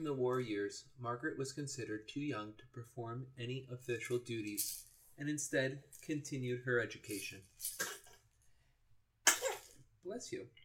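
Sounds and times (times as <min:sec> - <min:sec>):
speech: 0:00.0 - 0:07.9, 0:10.0 - 0:10.6
person sneezing: 0:07.7 - 0:08.2, 0:09.3 - 0:09.7.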